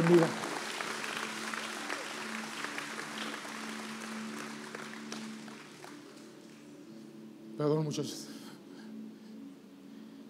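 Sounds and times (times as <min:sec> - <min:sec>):
audience applause: 0:00.0 - 0:06.7
speech: 0:00.1 - 0:00.4, 0:07.6 - 0:08.3.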